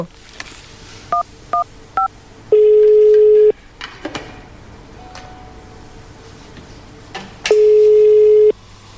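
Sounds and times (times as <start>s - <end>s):
steady electronic phone tone: 2.5s - 3.5s, 7.6s - 8.6s.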